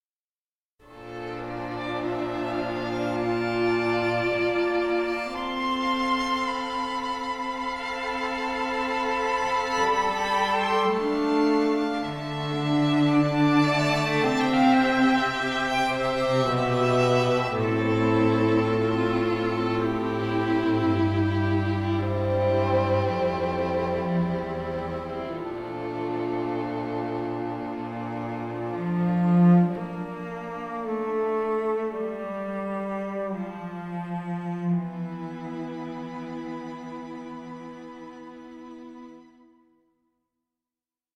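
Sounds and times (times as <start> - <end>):
cinematic solo strings: 0.9 - 39.7.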